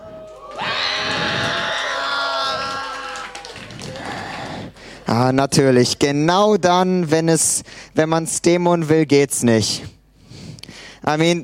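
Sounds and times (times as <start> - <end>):
rough shouting voices: 0.0 - 3.4
loud harsh scream: 0.6 - 3.3
speech: 5.1 - 10.0, 11.0 - 11.4.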